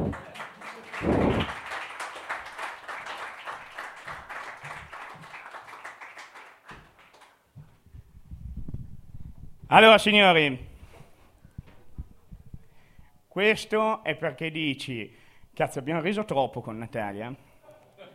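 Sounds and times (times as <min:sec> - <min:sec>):
audience applause for a performer at a live Italian show: 0:00.0 - 0:07.4
speech: 0:09.7 - 0:10.7, 0:13.4 - 0:17.4.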